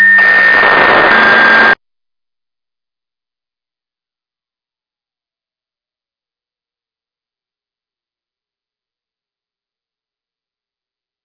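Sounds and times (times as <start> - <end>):
siren: 0.0 - 1.8.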